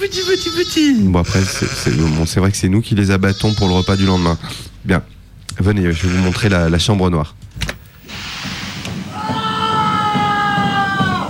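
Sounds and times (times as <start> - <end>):
speech: 0.0 - 7.4
hiss: 0.0 - 11.2
man screaming long and high-pitched: 9.1 - 11.2.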